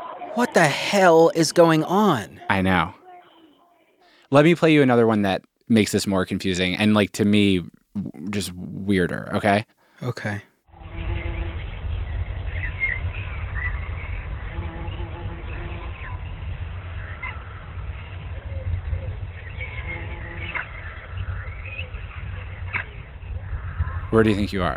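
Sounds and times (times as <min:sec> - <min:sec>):
speech: 0:00.4 - 0:03.0, 0:04.3 - 0:10.5, 0:24.1 - 0:24.7
low rumbling hum: 0:10.7 - 0:24.7
birds chirping outdoors: 0:11.1 - 0:24.7.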